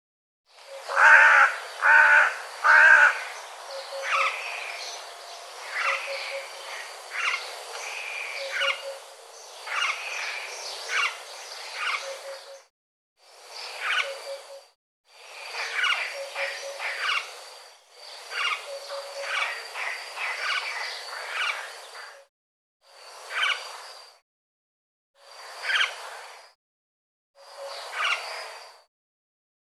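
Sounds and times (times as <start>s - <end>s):
bird calls: 0.6s - 12.7s, 13.6s - 14.7s, 15.6s - 17.4s, 18.0s - 22.2s.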